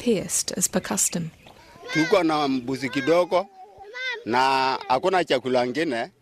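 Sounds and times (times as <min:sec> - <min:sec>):
speech: 0:00.0 - 0:03.6, 0:04.2 - 0:06.2
goat bleating as a child suckles from it in the Turkana region: 0:01.7 - 0:05.2.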